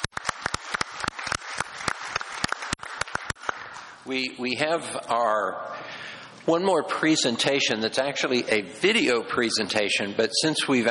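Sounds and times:
small audience applauding: 0.0 - 4.0
speech: 4.0 - 5.8, 6.4 - 10.8.

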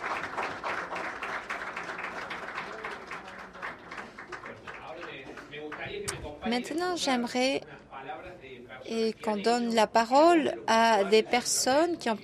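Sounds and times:
audience applause: 0.0 - 5.9
speech: 6.4 - 7.7, 8.9 - 12.2.

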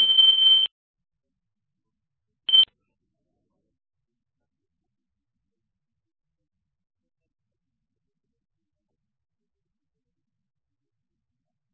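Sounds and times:
fire alarm shrill electronic beeps: 0.0 - 0.7.

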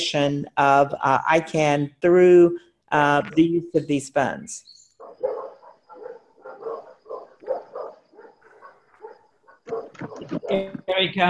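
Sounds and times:
speech: 0.0 - 4.8, 10.0 - 11.2
several dogs barking and yipping: 5.0 - 10.7.

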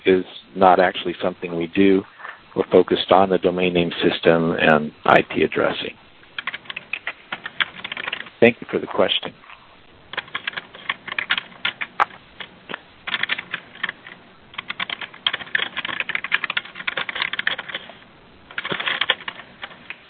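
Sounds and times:
speech: 0.1 - 6.0, 8.4 - 9.4
typing on a computer keyboard: 6.4 - 8.3, 10.1 - 12.5, 13.1 - 20.0.

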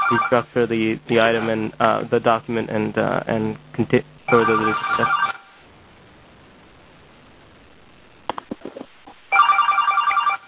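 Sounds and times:
phone ringtone bright electronic trill during a meeting: 0.0 - 0.4, 4.3 - 5.5, 9.3 - 10.4
speech: 0.1 - 5.3.

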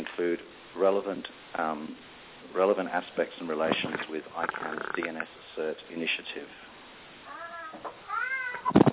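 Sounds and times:
speech: 0.3 - 6.7
cat meowing: 7.3 - 8.8.

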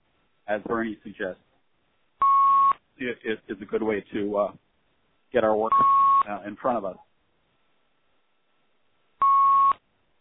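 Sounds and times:
speech: 0.5 - 1.5, 3.0 - 4.6, 5.3 - 7.1
loud electronic beep on a conference call: 2.2 - 2.8, 5.7 - 6.3, 9.2 - 9.8.

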